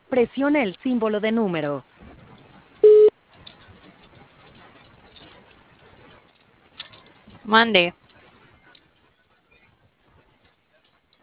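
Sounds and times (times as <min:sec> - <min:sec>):
speech: 0:00.1 - 0:02.0, 0:07.5 - 0:08.0
voicemail recording tone over a phone line: 0:02.8 - 0:03.1.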